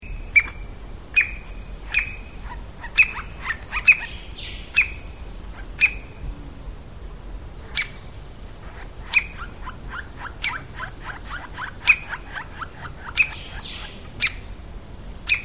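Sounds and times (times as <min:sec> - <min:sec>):
Golden-breasted Woodpecker Colaptes melanolaimus calling: 0:01.2 - 0:06.4, 0:08.6 - 0:14.4, 0:15.3 - 0:15.4.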